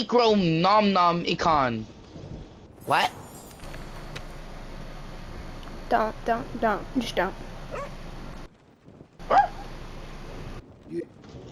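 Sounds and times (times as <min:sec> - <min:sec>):
speech: 0:00.0 - 0:02.0, 0:02.9 - 0:03.2, 0:05.9 - 0:08.0
dog barking: 0:07.7 - 0:08.0, 0:09.2 - 0:09.7.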